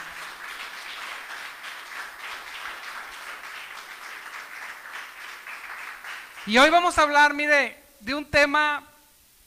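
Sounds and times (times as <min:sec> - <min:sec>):
large group applauding: 0:00.0 - 0:07.0
speech: 0:06.5 - 0:08.9.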